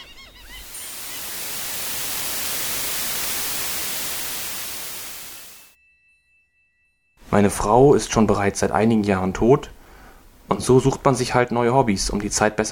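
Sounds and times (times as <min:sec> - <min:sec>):
faint warbling tones: 0:00.0 - 0:05.8
loud broadband static hiss: 0:00.4 - 0:05.8
speech: 0:07.3 - 0:09.8, 0:10.5 - 0:12.7.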